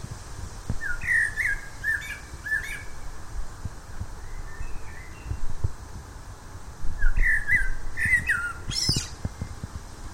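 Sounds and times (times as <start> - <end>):
common blackbird Turdus merula song: 0.8 - 3.1, 4.2 - 5.5, 7.0 - 9.6.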